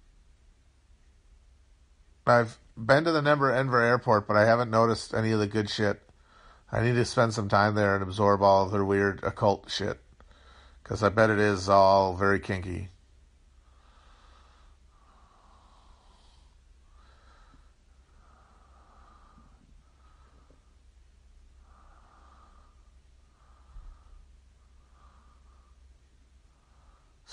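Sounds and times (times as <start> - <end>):
speech: 2.3 - 6.0, 6.7 - 10.0, 10.8 - 12.9
heavy rhythmic snorting breathing: 13.6 - 20.9, 21.5 - 27.3.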